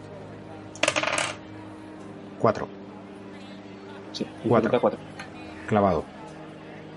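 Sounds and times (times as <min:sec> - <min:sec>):
two dice clattering onto a hard surface: 0:00.8 - 0:01.4
speech: 0:02.4 - 0:02.8, 0:04.2 - 0:05.1, 0:05.7 - 0:06.2.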